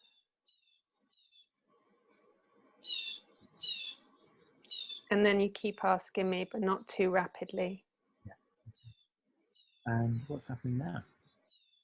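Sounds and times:
birds chirping outside: 2.8 - 7.4, 8.7 - 11.8
speech: 5.1 - 8.4, 9.9 - 11.1.

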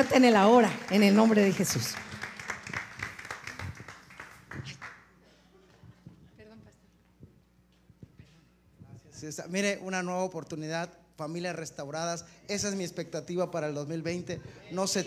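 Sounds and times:
speech: 0.0 - 2.2, 9.2 - 15.0
audience applauding: 0.0 - 5.2.

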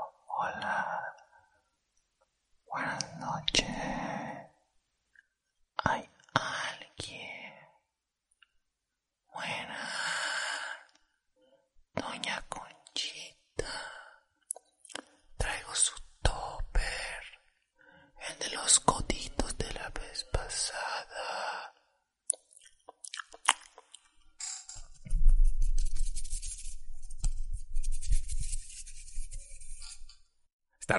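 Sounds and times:
ASMR breathy whispering against the microphone: 0.0 - 1.4, 2.7 - 4.6, 5.8 - 7.8, 9.3 - 10.9, 12.0 - 14.2, 14.9 - 17.4, 18.2 - 21.8
low rustling and scratching: 24.4 - 30.2
brushing noises: 24.7 - 30.2.

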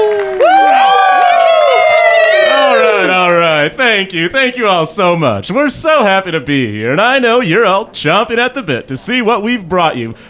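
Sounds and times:
crowd cheering and whooping: 0.0 - 4.3
speech: 3.9 - 10.2.

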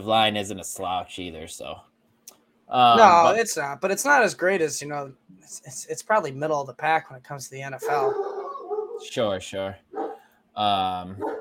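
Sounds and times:
speech: 0.0 - 1.9, 2.7 - 8.4, 9.0 - 9.9, 10.6 - 11.3
dog barking: 7.8 - 9.0, 9.9 - 10.2, 11.2 - 11.3.

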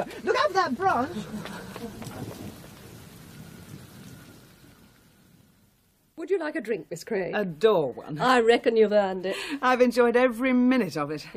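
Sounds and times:
speech: 0.0 - 2.6, 6.3 - 11.3
low rumble of thunder: 0.0 - 6.2
heavy rain pouring in a dense continuous hiss: 0.0 - 10.0.

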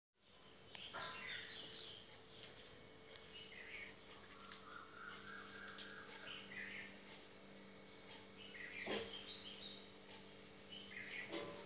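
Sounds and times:
faint bird song of whistled and warbled phrases: 0.2 - 11.6.

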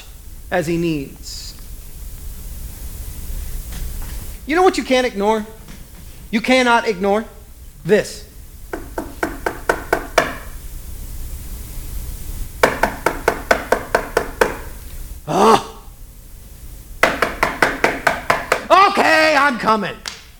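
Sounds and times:
speech: 0.5 - 1.4, 4.5 - 5.6, 6.3 - 8.3, 19.6 - 20.1
rapid insistent knocking on a door: 8.7 - 10.5, 12.6 - 14.8, 17.0 - 18.7
person calling out: 15.3 - 15.9, 18.7 - 20.1.

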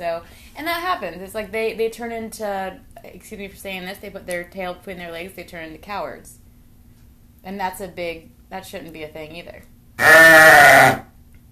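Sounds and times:
speech: 0.0 - 6.4, 7.4 - 11.0
sheep bleating: 10.0 - 11.0.

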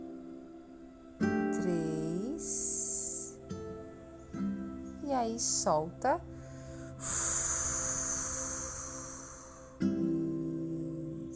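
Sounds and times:
soft tonal hum: 0.0 - 11.3
speech: 5.2 - 6.4
deep breath exhale during a breathing exercise: 6.3 - 9.8.

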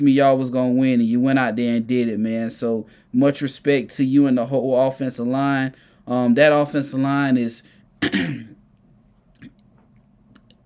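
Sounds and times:
speech: 0.0 - 8.5
throat clearing: 8.0 - 8.6.

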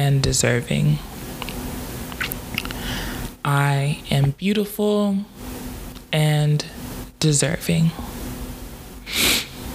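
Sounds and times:
speech: 0.1 - 1.2, 3.4 - 5.5, 6.1 - 8.1
person sniffling: 9.1 - 9.6.

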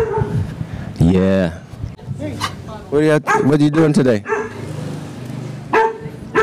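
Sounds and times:
pit bull barking: 0.0 - 0.4, 3.2 - 4.8, 5.7 - 6.4
speech: 1.0 - 1.6, 2.2 - 4.4.

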